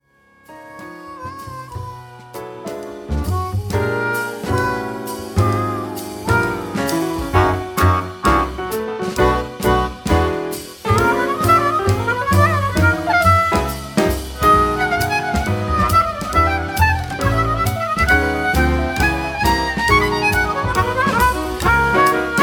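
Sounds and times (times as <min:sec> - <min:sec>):
harmonica playing blues in F: 0:00.5 - 0:08.6, 0:09.3 - 0:22.4.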